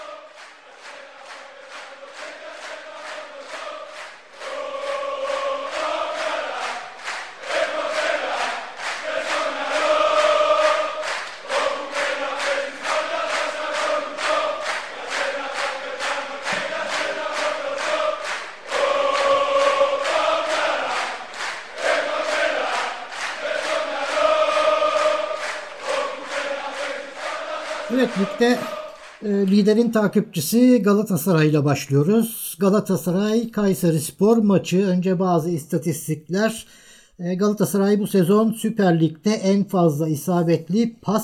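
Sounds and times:
football fans chanting in stadium: 0.0 - 29.2
speech: 28.2 - 41.2.

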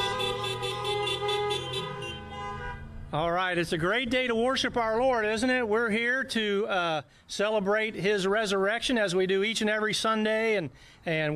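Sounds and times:
car horns honking at a Sunday morning church service: 0.0 - 3.1
speech: 3.1 - 11.3.

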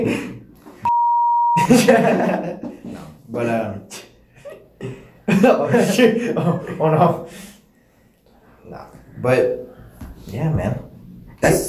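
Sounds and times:
censor bleep tone: 0.8 - 1.7
laughter: 1.6 - 3.2, 4.4 - 7.4
speech: 1.7 - 2.6, 3.3 - 4.0, 4.8 - 7.4, 8.7 - 9.6, 10.3 - 11.6.

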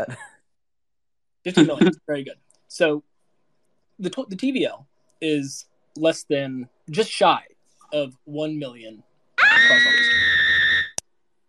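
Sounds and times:
speech: 0.0 - 0.3, 1.4 - 3.1, 4.0 - 10.1
woman screaming into a microphone: 9.4 - 11.0.

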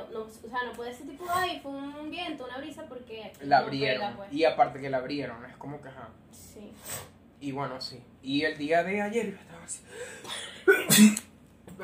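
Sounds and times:
speech: 0.1 - 11.8
sneeze: 10.7 - 11.3.

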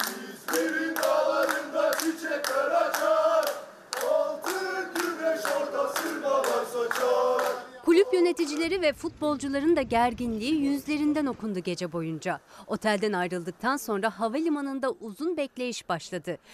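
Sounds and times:
large crowd of football supporters chanting slogans in unison: 0.0 - 8.8
football fans rhythmic clapping: 0.0 - 9.2
speech: 8.3 - 16.5.

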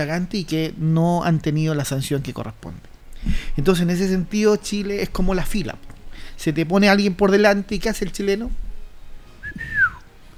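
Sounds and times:
speech: 0.0 - 8.6
person whistling a soft note as a quiet complaint: 9.4 - 10.1.

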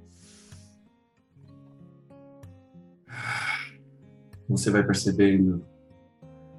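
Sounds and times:
deep long inhalations during a guided relaxation exercise: 0.0 - 0.7, 3.1 - 3.8
speech: 4.5 - 5.7.

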